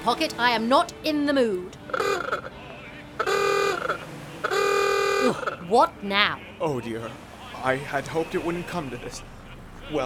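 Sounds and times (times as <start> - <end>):
speech: 0.0 - 2.5, 5.2 - 9.3, 9.9 - 10.0
Bentley coupe car horn with 4.5-liter engine and Wayman body honking: 1.9 - 5.7.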